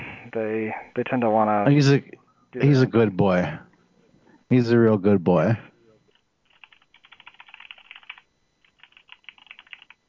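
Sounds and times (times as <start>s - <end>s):
speech: 0.4s - 3.7s, 4.5s - 5.7s
keyboard typing: 6.4s - 10.0s.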